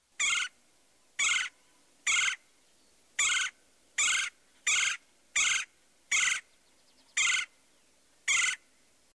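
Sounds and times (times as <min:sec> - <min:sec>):
red-bellied woodpecker: 0:00.2 - 0:00.6, 0:01.2 - 0:02.4, 0:03.2 - 0:07.5, 0:08.3 - 0:08.6.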